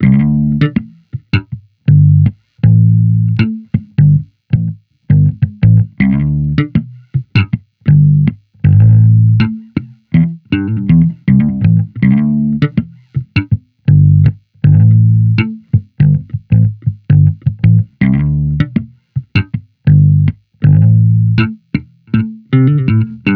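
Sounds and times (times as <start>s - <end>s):
amplified electric bass loop in A minor: 0.0s - 23.3s.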